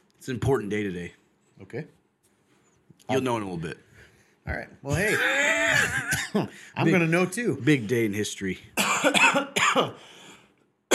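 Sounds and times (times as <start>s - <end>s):
speech: 0.2s - 2.0s, 3.1s - 10.2s
person coughing: 5.0s - 7.0s, 8.8s - 10.0s
raspy trailing breath: 10.0s - 10.6s.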